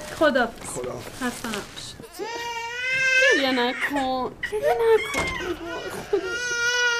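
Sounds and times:
speech: 0.2s - 2.3s, 3.4s - 6.8s
person sobbing: 4.5s - 6.9s.

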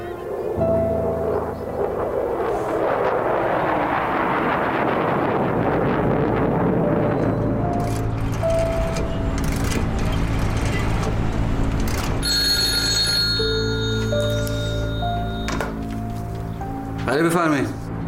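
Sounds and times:
low humming background: 0.0s - 17.0s
telephone ringing with a high electronic trill: 12.2s - 16.0s.

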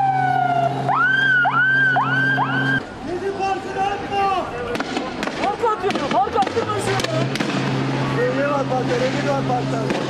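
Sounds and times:
rising siren whoops during riot police clearing a protest: 0.0s - 2.8s
crowd noise of protesters in a city square in Istanbul: 1.8s - 10.0s.

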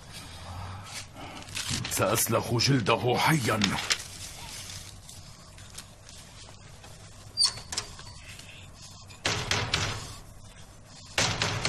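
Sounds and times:
speech: 2.0s - 4.0s
heavy pounding on a locked door: 9.2s - 10.2s, 11.2s - 11.6s.

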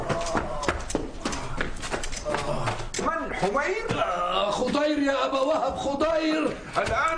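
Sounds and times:
horse hooves clip-clopping as a rider urges his mount on: 0.0s - 3.1s
speech: 3.4s - 7.1s.

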